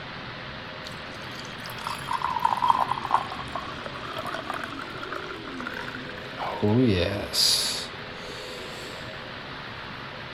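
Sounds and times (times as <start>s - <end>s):
red Spanish wine being poured into a glass: 0.8s - 6.8s
speech: 6.6s - 7.6s.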